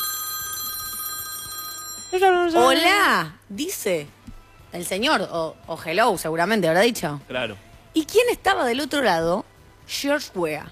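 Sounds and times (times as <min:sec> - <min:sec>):
telephone ringing at home: 0:00.0 - 0:02.8
speech: 0:02.2 - 0:10.7.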